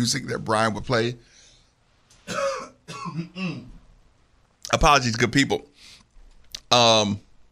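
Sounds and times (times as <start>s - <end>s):
speech: 0.0s - 1.4s, 3.0s - 3.8s, 4.7s - 5.7s, 6.7s - 7.3s
person clearing throat: 2.2s - 3.8s.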